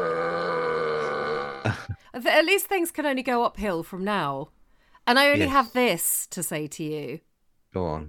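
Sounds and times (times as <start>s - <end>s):
long drawn-out loud burp: 0.0s - 2.0s
speech: 1.6s - 8.0s.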